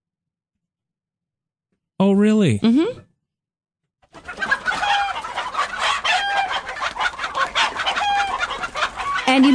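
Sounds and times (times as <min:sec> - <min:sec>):
speech: 0:02.0 - 0:03.1, 0:09.4 - 0:09.5
flock of chickens clucking: 0:04.1 - 0:09.5
rooster crowing: 0:04.8 - 0:05.2, 0:05.8 - 0:06.7, 0:07.6 - 0:09.5.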